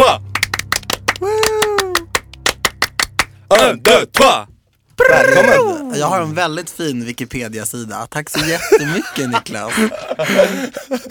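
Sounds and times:
crowd clapping in unison to a rhythmic beat: 0.0s - 4.4s
drawn-out vocal whoop: 1.2s - 2.1s, 5.0s - 5.9s
speech: 3.6s - 11.1s
laughter: 8.4s - 11.1s.

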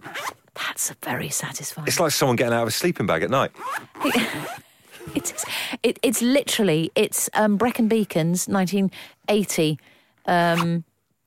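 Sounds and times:
zip pulled open around a Filofax: 0.0s - 0.4s, 3.6s - 5.6s, 10.4s - 10.8s
speech: 0.8s - 10.9s.

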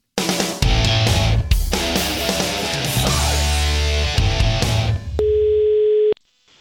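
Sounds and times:
loud busy music: 0.2s - 5.1s
telephone ringing tone of an outgoing call: 5.2s - 6.2s.

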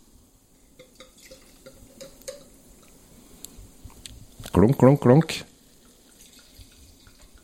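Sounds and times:
sparkling wine pouring into a glass in Burgundy: 0.7s - 3.1s, 5.5s - 7.4s
speech: 4.6s - 5.5s.

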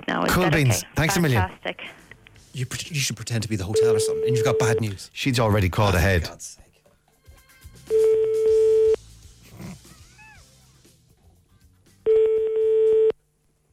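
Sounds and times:
speech: 0.1s - 2.0s, 2.6s - 6.6s
buzzing telephone ring tones on the line: 3.8s - 4.9s, 7.9s - 9.0s, 12.1s - 13.2s.

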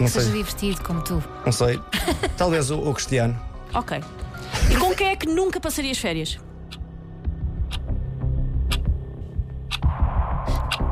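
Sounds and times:
speech: 0.0s - 6.5s
clock ticking: 6.7s - 6.9s, 7.5s - 8.0s, 8.6s - 9.0s, 9.7s - 9.9s, 10.5s - 10.9s.

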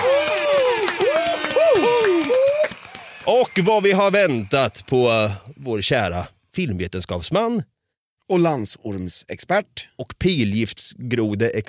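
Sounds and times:
scattered hand clapping: 0.0s - 5.1s
small group whooping and hooting: 0.0s - 5.5s
speech: 3.3s - 7.7s, 8.3s - 11.6s.

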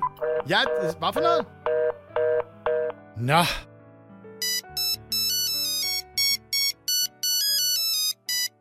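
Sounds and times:
speech: 0.4s - 1.6s, 3.2s - 3.7s
telephone ringing with a bright electronic melodic ringtone: 1.7s - 3.0s, 4.4s - 8.5s.

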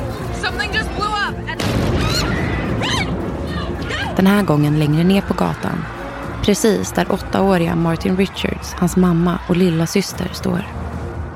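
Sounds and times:
people shouting and screaming: 0.6s - 10.7s
sudden explosion boom: 1.6s - 5.4s
speech: 4.2s - 11.0s.

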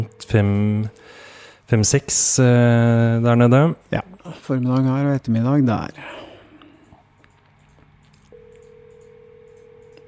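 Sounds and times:
low hum: 0.0s - 10.0s
speech: 0.1s - 6.2s
ringback tone from an outgoing phone call: 8.3s - 10.0s.

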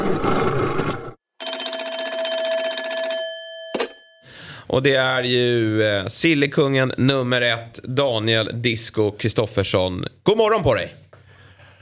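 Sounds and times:
speech: 0.1s - 0.6s, 4.7s - 11.0s
telephone ringing on an outgoing call: 1.4s - 4.3s.

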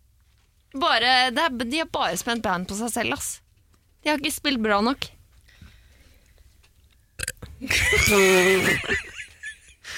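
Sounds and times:
speech: 0.7s - 3.4s, 4.0s - 5.2s, 7.6s - 9.1s
loud deep burp: 7.2s - 8.8s
laughter: 7.6s - 9.9s.

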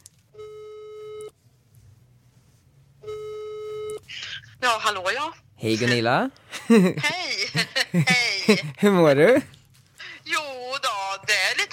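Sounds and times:
ringback tone from an outgoing phone call: 0.4s - 1.3s, 3.0s - 4.0s
speech: 4.6s - 9.6s
laughter: 6.5s - 8.8s.

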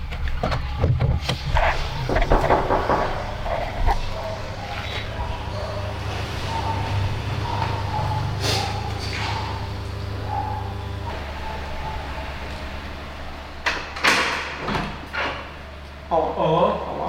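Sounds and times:
low rumble of a running vehicle: 0.0s - 16.2s
sharp clicks and thumps: 0.1s - 4.0s.

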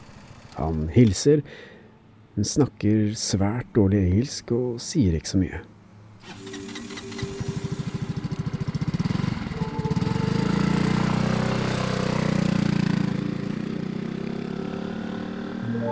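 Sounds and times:
scooter engine running: 0.0s - 0.6s, 6.2s - 15.8s
speech: 0.6s - 1.8s, 2.4s - 6.4s.

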